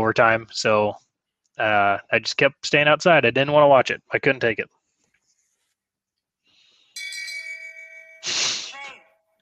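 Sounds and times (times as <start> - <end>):
speech: 0.1 - 1.0, 1.6 - 4.8
bell ding sound effect: 7.0 - 9.3
loud breathy burst of voice-like noise: 8.2 - 9.0.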